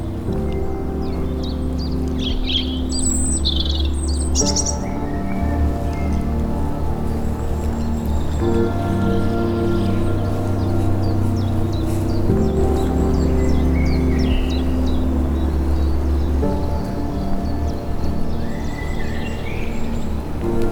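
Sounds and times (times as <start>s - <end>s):
birds chirping and singing: 0.0s - 20.7s.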